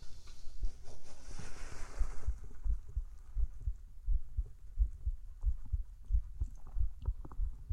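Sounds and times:
soft rustling hiss: 0:00.0 - 0:07.7
fast heartbeat: 0:02.0 - 0:07.7.

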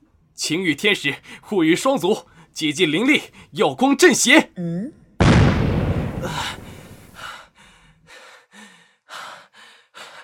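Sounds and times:
speech: 0:00.4 - 0:05.0
loud explosion: 0:05.2 - 0:07.2
heavy breathy gasps and pants: 0:06.2 - 0:10.2.

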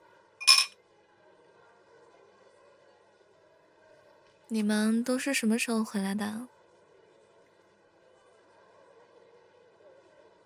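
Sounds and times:
glasses clinking in a toast among friends at home for the New Year holiday: 0:00.4 - 0:00.7
speech: 0:04.5 - 0:06.6.

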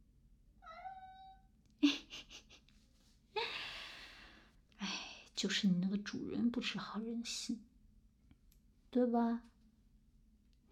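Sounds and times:
cat meowing: 0:00.6 - 0:01.5
speech: 0:05.4 - 0:07.7, 0:08.9 - 0:09.5.

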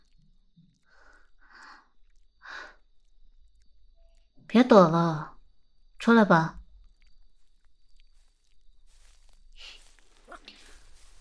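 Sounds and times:
speech: 0:04.5 - 0:05.3, 0:06.0 - 0:06.6
rustling: 0:06.9 - 0:11.2
footsteps shuffling and scuffing on a gritty surface: 0:08.0 - 0:11.2.

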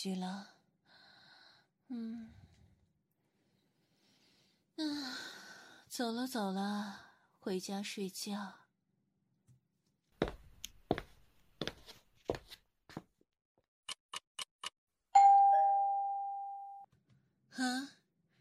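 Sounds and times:
speech: 0:00.0 - 0:00.6, 0:01.9 - 0:02.4, 0:04.8 - 0:08.6
footsteps: 0:10.2 - 0:13.1
single clear doorbell tone: 0:15.2 - 0:16.9.

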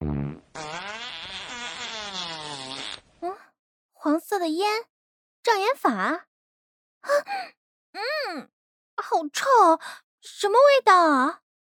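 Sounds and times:
long buzzy fart blast used as a comic fart-cannon attack: 0:00.0 - 0:03.1
speech: 0:04.1 - 0:04.9, 0:05.5 - 0:06.3, 0:07.0 - 0:11.4.

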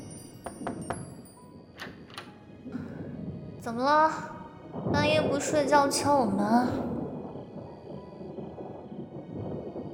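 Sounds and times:
deep rolling thunder: 0:02.6 - 0:09.9
rain hissing: 0:02.7 - 0:09.9
speech: 0:03.6 - 0:06.9.

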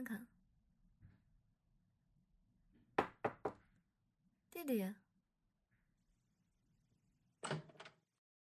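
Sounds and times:
speech: 0:00.0 - 0:00.3, 0:04.6 - 0:05.0
door opening with latch clack and brushing swing: 0:07.4 - 0:08.0.

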